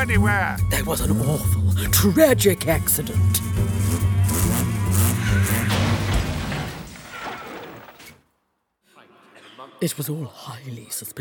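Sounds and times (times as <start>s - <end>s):
speech: 0.0s - 3.6s, 9.8s - 11.1s
van engine revving and moving off: 0.0s - 6.9s.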